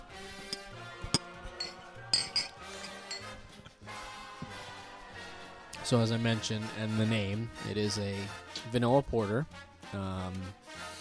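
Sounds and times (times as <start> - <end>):
beer glasses clinking in a toast: 0.5 - 3.5
speech: 5.9 - 10.6.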